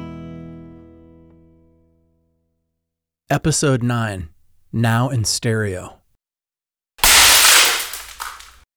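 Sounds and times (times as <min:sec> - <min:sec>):
speech: 0:03.3 - 0:06.0
dinner plate smashing against a wall: 0:07.0 - 0:08.6
plate shards scattering: 0:07.0 - 0:08.6.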